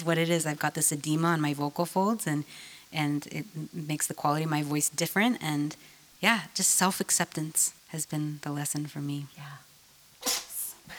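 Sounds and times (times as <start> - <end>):
speech: 0.0 - 9.7
cat sneezing: 10.2 - 10.7.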